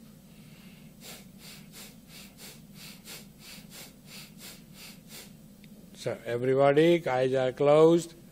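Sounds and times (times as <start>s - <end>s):
low constant hum: 0.0s - 8.3s
mild Bhastrika yogic breathing from the stomach: 0.2s - 5.5s
speech: 6.0s - 8.2s.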